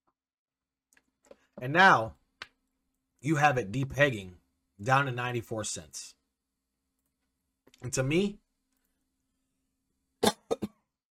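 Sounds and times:
speech: 1.6 - 2.2, 3.2 - 6.2, 7.8 - 8.4
person coughing in a room: 10.2 - 10.9.

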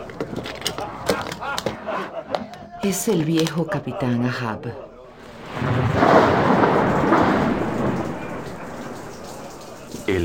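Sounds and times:
laughter: 0.0 - 5.3
speech: 2.8 - 4.9
heavy rain: 5.2 - 10.2
rolling thunder during a storm: 5.3 - 10.2.

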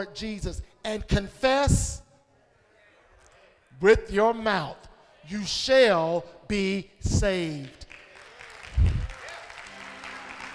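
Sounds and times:
speech: 0.0 - 2.0, 3.8 - 7.9
light polite clapping from an audience: 7.6 - 10.5.

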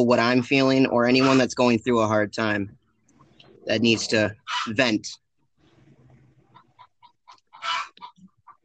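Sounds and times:
speech: 0.0 - 2.8, 3.6 - 5.2
chickens clucking in a busy barnyard: 0.7 - 1.7, 2.5 - 5.0, 5.7 - 8.6.

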